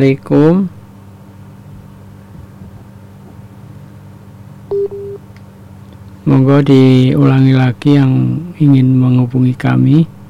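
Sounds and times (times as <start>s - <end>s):
speech: 0.0s - 0.8s, 6.3s - 10.2s
telephone busy tone after a call disconnects: 4.7s - 5.2s.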